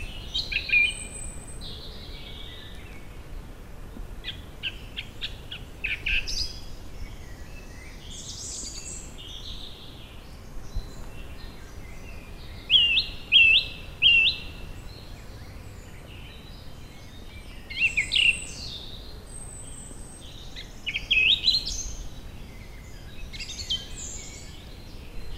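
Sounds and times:
song thrush singing varied high phrases and a sharp whistled figure: 0:00.0 - 0:25.3
steady low hiss: 0:00.0 - 0:25.3.

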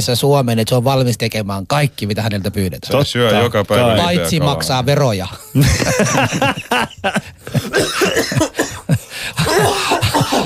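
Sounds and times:
speech: 0:00.0 - 0:08.7
laughter: 0:05.5 - 0:10.4
person coughing harshly: 0:07.5 - 0:10.4.

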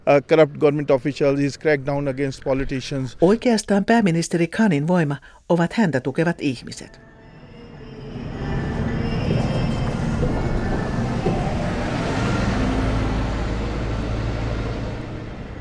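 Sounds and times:
speech: 0:00.1 - 0:07.1
moving metro train rumbling in Islamabad Pakistan: 0:07.1 - 0:15.5
metro train cars rattling: 0:08.0 - 0:15.5.

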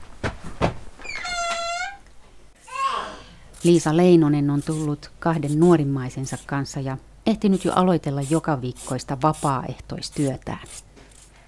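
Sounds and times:
village hall door creaking open: 0:01.0 - 0:02.0
child's voice: 0:02.6 - 0:03.4
speech: 0:03.6 - 0:10.9.

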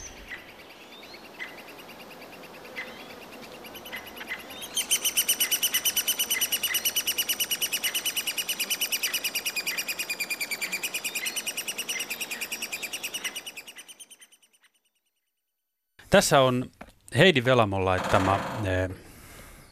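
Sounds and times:
three-toed woodpecker parent calling: 0:00.0 - 0:14.7
speech: 0:16.2 - 0:19.1.

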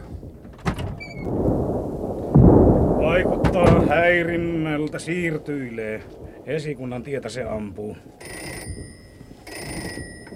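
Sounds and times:
low rumble: 0:01.2 - 0:09.3
speech: 0:03.2 - 0:08.9
field telephone ringing at a wartime frontline post: 0:08.2 - 0:10.3.

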